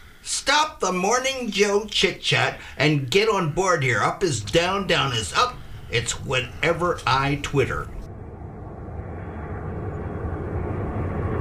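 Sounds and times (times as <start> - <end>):
speech: 0.5 - 8.0
airplane engine roaring overhead: 3.4 - 11.3.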